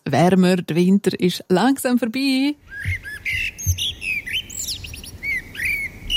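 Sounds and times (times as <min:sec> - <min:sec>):
speech: 0:00.1 - 0:03.9
birds chirping and warbling in spring: 0:02.3 - 0:06.1.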